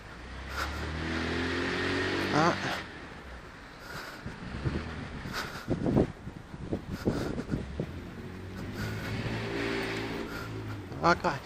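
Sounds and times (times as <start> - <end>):
white car engine rumbling as it moves past: 0.0 - 11.4
steady wind buffeting the microphone: 4.0 - 11.0
speech: 11.1 - 11.4.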